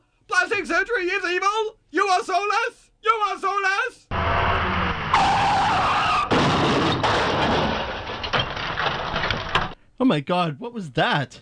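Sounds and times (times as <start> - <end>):
speech: 0.6 - 4.4, 10.0 - 11.4
dense rush of road noise: 4.1 - 6.4
car skidding with loud drawn-out tire screech: 4.1 - 8.0
abrupt noisy bursts of an impact: 4.1 - 9.8.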